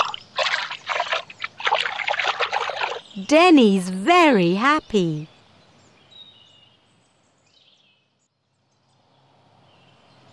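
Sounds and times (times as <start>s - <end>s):
water splashing and sloshing in a pond: 0.0s - 3.2s
speech: 3.2s - 5.3s.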